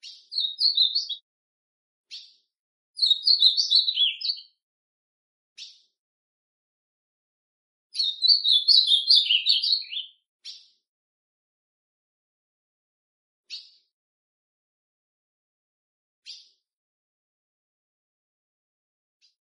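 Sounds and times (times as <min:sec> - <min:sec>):
ultramarine grosbeak singing a rich warbling song: 0:00.0 - 0:01.2, 0:03.0 - 0:04.6, 0:08.0 - 0:10.8.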